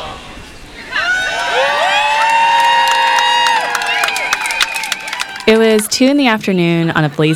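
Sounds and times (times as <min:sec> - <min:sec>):
large crowd cheering and whooping at an outdoor rally in a small park: 0:00.8 - 0:05.8
people clapping: 0:01.4 - 0:07.3
speech: 0:05.5 - 0:07.3.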